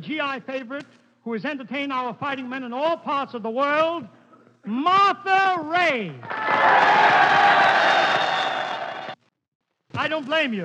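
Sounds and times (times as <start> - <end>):
speech: 0.0 - 8.1, 10.0 - 10.6
large audience cheering: 6.2 - 9.2
shrill whistles from a large audience: 6.8 - 9.2.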